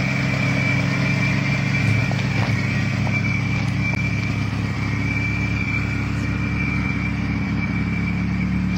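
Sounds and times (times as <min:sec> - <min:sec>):
rumbling engine idling with faint rattle: 0:00.0 - 0:08.7.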